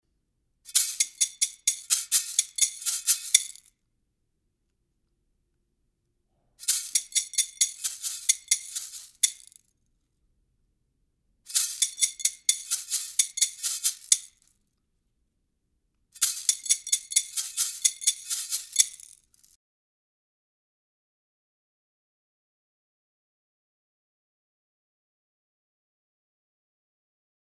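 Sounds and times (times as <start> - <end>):
large and small chocalho shakers rattling: 0.7 - 3.7, 6.6 - 9.6, 11.5 - 14.4, 16.2 - 19.5.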